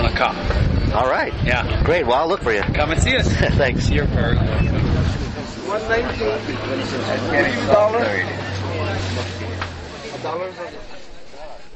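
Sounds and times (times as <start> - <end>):
wind buffeting an outdoor microphone on a cold windy day: 0.0 - 7.9
speech: 0.2 - 9.4, 10.2 - 11.0.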